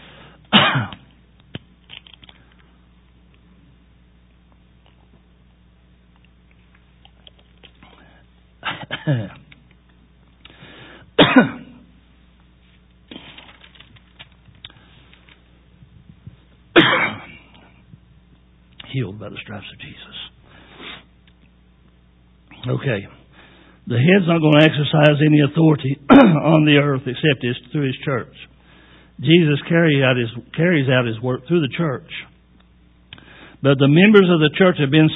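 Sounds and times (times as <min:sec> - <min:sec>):
person clearing throat: 0:00.5 - 0:01.1, 0:08.6 - 0:09.5, 0:11.2 - 0:11.9, 0:16.8 - 0:17.8, 0:26.1 - 0:26.5
person coughing harshly: 0:00.5 - 0:01.1, 0:08.6 - 0:09.5, 0:11.2 - 0:11.9, 0:16.8 - 0:17.8, 0:26.1 - 0:26.5
speech: 0:09.0 - 0:09.4, 0:11.4 - 0:11.6, 0:19.2 - 0:20.4, 0:22.7 - 0:23.2, 0:23.9 - 0:28.5, 0:29.2 - 0:32.2, 0:33.6 - 0:35.1.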